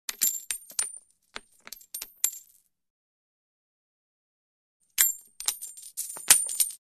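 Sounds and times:
coins falling to floor: 0.1 - 2.6, 5.0 - 6.8.

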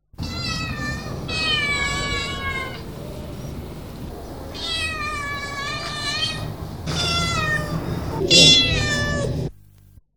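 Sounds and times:
cats: 0.1 - 9.5.

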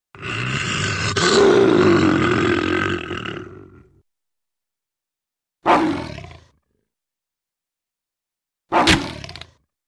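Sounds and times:
lion or tiger vicious growl: 0.1 - 4.0, 5.7 - 6.6.

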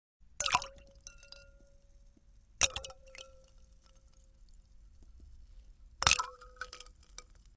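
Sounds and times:
ice dropping into a glass of water: 0.4 - 1.7, 2.6 - 4.4, 6.0 - 7.5.

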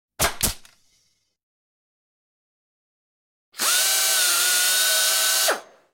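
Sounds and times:
nail gun: 3.6 - 5.8
air tools: 3.6 - 5.9.

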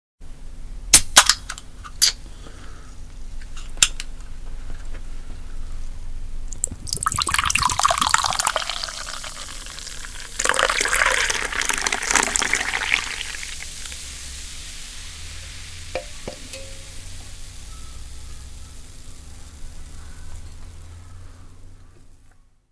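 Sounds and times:
liquid pouring from a can: 6.5 - 17.5
can opening: 6.5 - 17.6.

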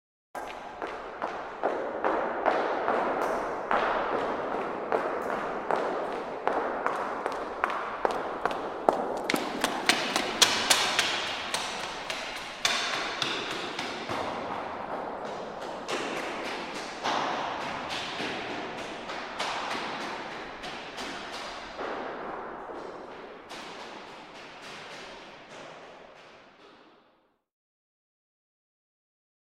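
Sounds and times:
footsteps passing by in echoey stairwell: 0.4 - 27.4.

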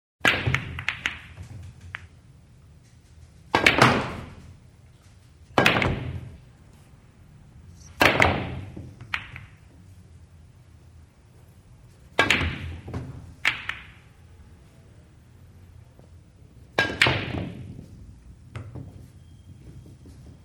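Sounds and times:
pool game sequence: 0.2 - 6.9, 7.8 - 10.0, 11.9 - 14.0, 16.0 - 20.4.

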